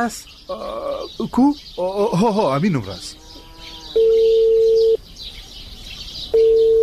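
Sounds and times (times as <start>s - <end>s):
speech: 0.0s - 3.2s
unanswered phone call ringback tone: 4.0s - 5.0s, 6.4s - 6.8s.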